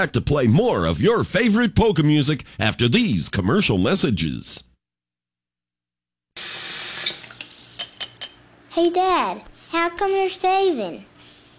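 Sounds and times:
speech: 0.0 - 4.7, 8.8 - 11.1
faucet running hot water into a sink: 6.4 - 8.0.

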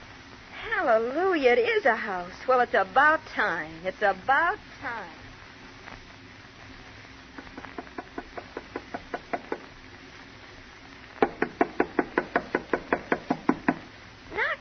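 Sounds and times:
speech: 0.9 - 5.2
rapid knocking on a door: 8.0 - 9.7, 11.2 - 13.9.

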